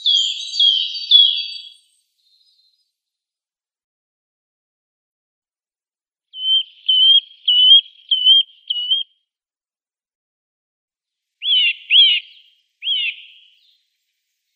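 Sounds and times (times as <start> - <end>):
Eurasian nuthatch song of clear high whistled notes: 0.0 - 2.9, 6.3 - 9.2, 11.4 - 14.5.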